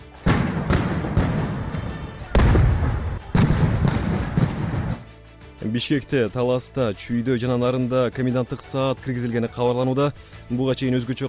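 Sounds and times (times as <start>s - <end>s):
gunshots during street clashes between demonstrators and police in Bishkek: 0.2s - 5.1s
speech: 5.7s - 11.2s.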